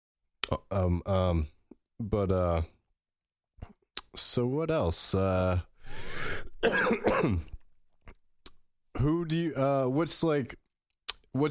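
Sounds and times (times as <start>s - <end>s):
speech: 0.5s - 2.8s, 4.2s - 7.5s, 9.0s - 10.6s, 11.4s - 11.5s
strained voiced throat sounds: 6.4s - 7.6s
person clearing throat: 6.6s - 7.6s
person coughing: 6.6s - 7.6s.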